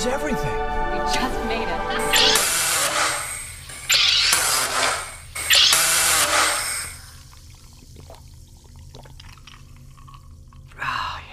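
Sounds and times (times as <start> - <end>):
speech: 0.0 - 1.8
SodaStream machine carbonating water: 2.0 - 8.2
liquid splash: 5.6 - 10.7
fizzy sparkling water being poured and trickling: 6.4 - 10.8.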